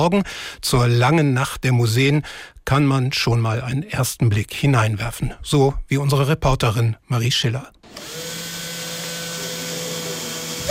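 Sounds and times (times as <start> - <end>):
speech: 0.0 - 8.3
power tool or machine whirring at museum construction site in Lüneburg Germany: 7.8 - 10.6.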